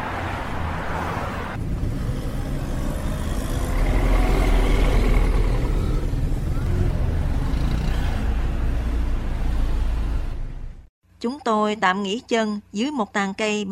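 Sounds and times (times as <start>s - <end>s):
busy highway traffic with cars and trucks rushing past on a wet road: 0.0s - 10.9s
speech: 11.2s - 13.7s.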